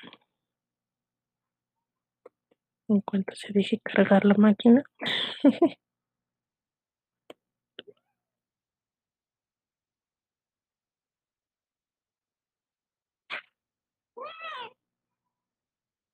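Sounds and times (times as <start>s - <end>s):
speech: 2.9s - 5.9s
laughter: 5.0s - 5.8s
cat meowing and whining: 14.2s - 14.8s.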